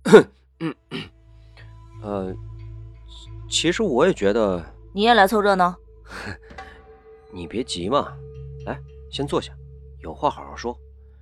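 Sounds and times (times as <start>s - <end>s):
speech: 0.1s - 1.1s, 2.0s - 2.5s, 3.1s - 6.6s, 7.3s - 10.8s
throat clearing: 0.1s - 1.1s.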